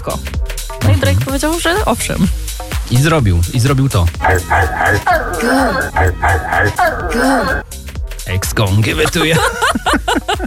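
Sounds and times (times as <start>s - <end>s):
speech: 0.0s - 10.4s
man imitating a barking dog: 4.2s - 7.6s
laughter: 8.9s - 10.4s.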